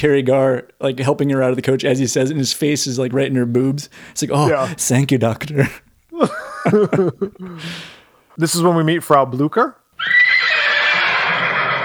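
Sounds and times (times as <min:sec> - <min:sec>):
speech: 0:00.0 - 0:09.8
laughter: 0:04.3 - 0:08.6
horse whinnying with high-pitched neigh: 0:10.0 - 0:11.8.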